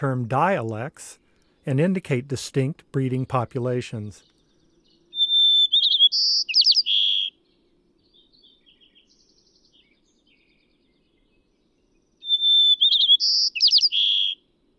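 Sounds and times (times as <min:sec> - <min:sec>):
speech: 0:00.0 - 0:04.3
white-crowned sparrow singing: 0:03.9 - 0:14.4
faint scattered chirps: 0:04.2 - 0:14.4.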